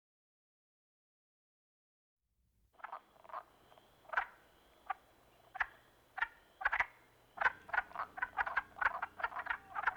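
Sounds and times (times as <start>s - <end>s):
wood frog croaking in short raspy clucks: 2.8s - 9.9s.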